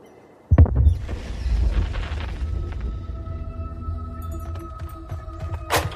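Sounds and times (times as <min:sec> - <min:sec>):
sudden deep boom: 0:00.5 - 0:04.1
long low rumble: 0:00.5 - 0:05.7
faint steady humming tones: 0:00.6 - 0:05.9.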